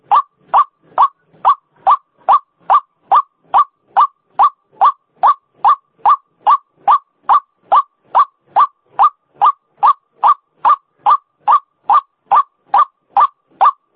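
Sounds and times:
female white-breasted waterhen calling: 0:00.0 - 0:13.9.

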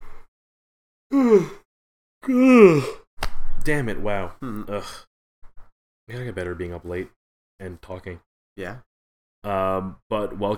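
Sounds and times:
person yawning: 0:01.1 - 0:01.6, 0:02.2 - 0:03.0
speech: 0:01.1 - 0:01.6, 0:02.3 - 0:03.0, 0:03.6 - 0:05.1, 0:06.1 - 0:10.5.

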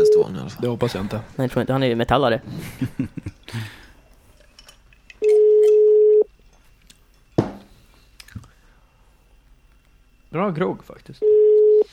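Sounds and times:
speech: 0:00.0 - 0:03.8, 0:10.3 - 0:11.8
laughter: 0:02.5 - 0:03.8
telephone ringback tone while placing a call: 0:05.2 - 0:06.3, 0:11.2 - 0:11.9.

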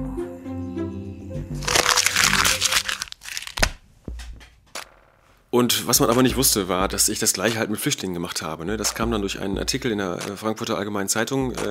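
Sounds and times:
paper being folded into an origami crane, crinkling and crackling: 0:01.6 - 0:03.8
speech: 0:05.5 - 0:11.6.

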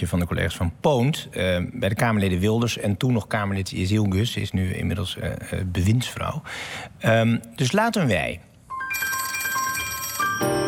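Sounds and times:
speech: 0:00.0 - 0:09.1
telephone ringing while a call is being placed: 0:08.8 - 0:10.6.

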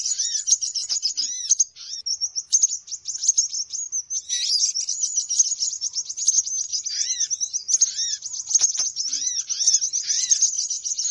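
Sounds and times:
bird lure sound of high-pitched twittering chirps and trills: 0:00.0 - 0:11.0.

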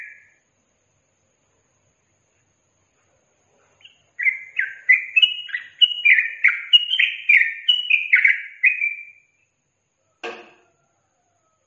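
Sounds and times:
yellow-vented bulbul song: 0:00.0 - 0:00.4, 0:03.8 - 0:09.6.

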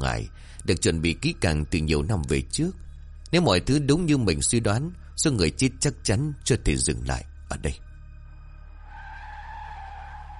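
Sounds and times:
speech: 0:00.0 - 0:07.9
car tyres screeching under hard braking: 0:08.8 - 0:10.3.

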